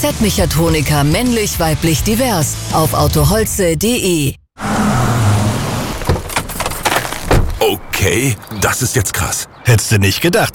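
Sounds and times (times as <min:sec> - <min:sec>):
speech: 0:00.0 - 0:04.4, 0:08.0 - 0:10.5
new Opel car engine revving: 0:04.6 - 0:07.8.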